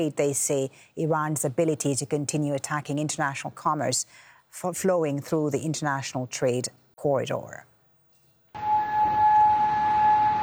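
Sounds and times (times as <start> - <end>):
speech: 0.0 - 7.7
air raid siren wailing: 8.6 - 10.4.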